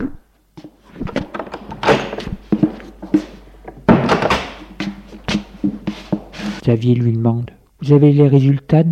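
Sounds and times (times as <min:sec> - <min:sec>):
rattling handling noise of a door: 0:00.6 - 0:06.6
wooden door opening and closing to an office: 0:00.9 - 0:02.8, 0:03.7 - 0:04.9
door banging: 0:00.9 - 0:06.6
speech: 0:06.7 - 0:08.9.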